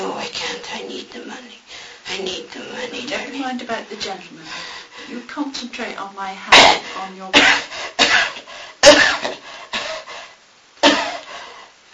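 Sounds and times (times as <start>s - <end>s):
speech: 3.5s - 4.5s, 5.1s - 7.8s
harsh broadband coughs: 6.5s - 10.1s, 10.8s - 11.3s.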